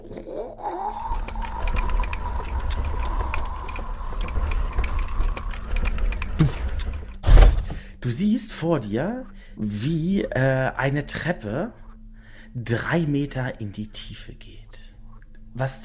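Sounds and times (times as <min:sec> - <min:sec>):
heavy door scraping over floor with creaking grinding drag: 0:01.1 - 0:07.8
speech: 0:06.4 - 0:06.6, 0:08.0 - 0:11.8, 0:12.5 - 0:14.8, 0:15.6 - 0:15.8.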